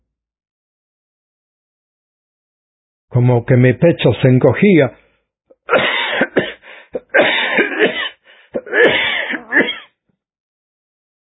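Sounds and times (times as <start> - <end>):
speech: 3.1 - 5.0
loud coughing fit after choking: 5.5 - 10.0
person gasping: 6.0 - 9.6.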